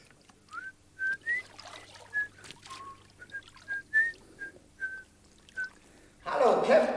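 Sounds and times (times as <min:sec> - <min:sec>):
person whistling a lively tune: 0:00.5 - 0:01.5, 0:02.1 - 0:05.8.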